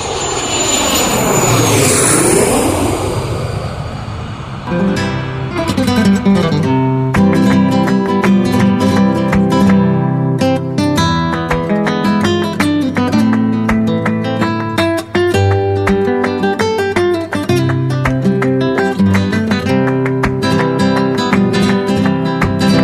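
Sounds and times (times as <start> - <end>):
airplane taking off: 0.0 - 9.4, 22.6 - 22.8
plucked guitar music: 4.7 - 22.8.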